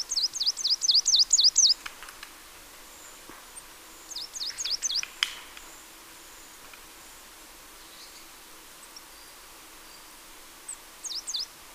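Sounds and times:
marsh tit Poecile palustris calling: 0.0s - 1.8s, 4.1s - 5.1s, 11.0s - 11.5s.

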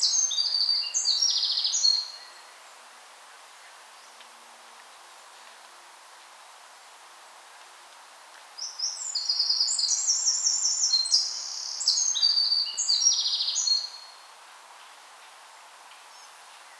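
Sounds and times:
Eurasian wren rapid piercing trilling song: 0.0s - 2.1s, 8.6s - 14.0s.

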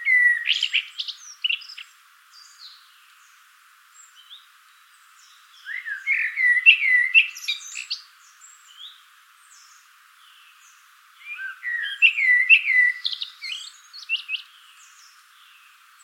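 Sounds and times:
common blackbird Turdus merula singing fluty warbled phrases: 0.0s - 3.0s, 5.2s - 16.0s.

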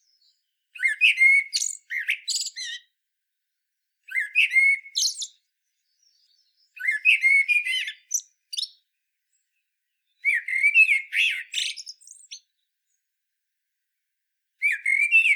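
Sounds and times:
common blackbird singing fluted phrases with high-pitched chittering: 0.0s - 2.9s, 4.0s - 12.6s, 14.6s - 15.3s.

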